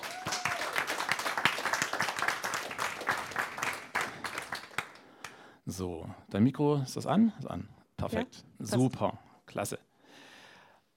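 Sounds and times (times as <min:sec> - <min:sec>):
room full of people applauding: 0:00.0 - 0:05.4
speech: 0:05.8 - 0:09.9.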